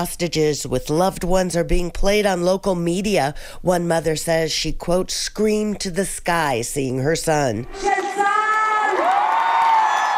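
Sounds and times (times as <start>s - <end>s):
speech: 0.0s - 8.0s
crowd of tens of thousands cheering in a downtown Tel Aviv plaza: 7.7s - 10.1s
high whoops and shouts: 8.4s - 10.1s.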